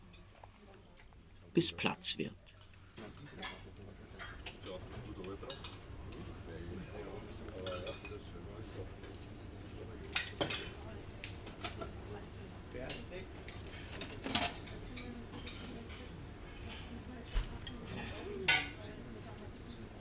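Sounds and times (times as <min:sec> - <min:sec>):
low kitchen hum: 0:00.0 - 0:20.0
speech: 0:01.6 - 0:02.6
pots, dishes and cutlery clattering: 0:03.0 - 0:05.9, 0:07.5 - 0:08.3, 0:09.0 - 0:10.8, 0:12.8 - 0:18.9.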